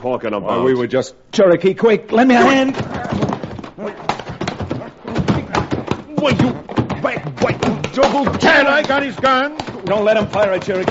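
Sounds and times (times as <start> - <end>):
speech: 0.0 - 4.0, 6.2 - 6.6, 8.0 - 10.8
hooves of horses drawing U.S. Army wagons: 2.4 - 10.8.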